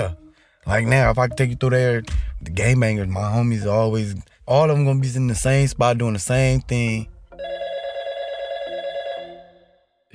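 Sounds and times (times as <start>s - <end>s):
speech: 0.0s - 7.1s
telephone ringing with a trilling tone: 7.3s - 9.8s.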